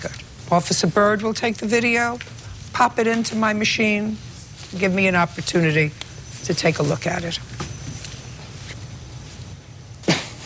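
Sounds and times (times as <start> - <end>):
speech: 0.0 - 7.5
low hum: 0.0 - 10.4
smoker's cough: 10.0 - 10.4.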